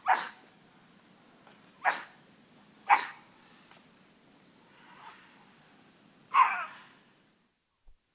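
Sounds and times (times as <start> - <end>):
white-throated capuchin monkey giving harsh barking calls in rainforest: 0.0 - 0.4, 1.8 - 2.2, 2.8 - 3.3, 6.3 - 7.0.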